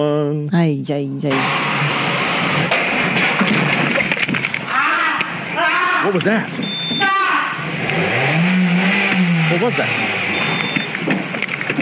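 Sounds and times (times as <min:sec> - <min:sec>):
speech: 0:00.0 - 0:03.2, 0:06.0 - 0:06.7, 0:09.5 - 0:10.6
car engine revving: 0:01.3 - 0:05.6, 0:07.1 - 0:11.7.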